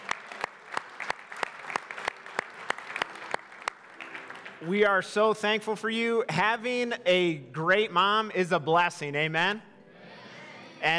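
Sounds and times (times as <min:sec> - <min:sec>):
church congregation clapping in unison on Mother's Day: 0:00.0 - 0:05.1
speech: 0:04.6 - 0:09.7.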